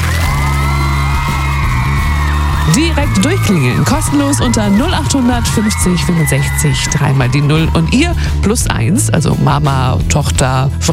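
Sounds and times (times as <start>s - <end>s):
girls screaming: 0.0s - 8.4s
speech: 2.8s - 10.9s.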